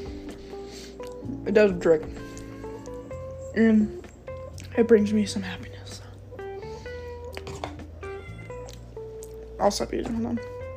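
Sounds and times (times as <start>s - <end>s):
speech: 1.4s - 2.2s, 3.6s - 4.0s, 4.8s - 5.7s, 9.6s - 10.5s
cat meowing insistently: 7.5s - 8.8s.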